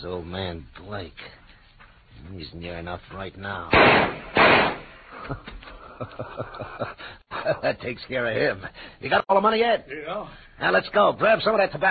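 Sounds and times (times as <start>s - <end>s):
speech: 0.0s - 1.4s, 2.2s - 11.8s
gunshot during a store robbery: 3.7s - 5.2s
laughter: 5.1s - 7.8s.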